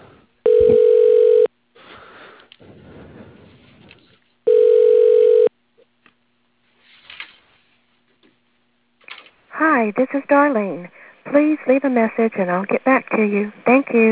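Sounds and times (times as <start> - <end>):
telephone ringing tones as a call is transferred to voicemail: 0.4 - 1.5, 4.5 - 5.5
speech: 9.9 - 14.1.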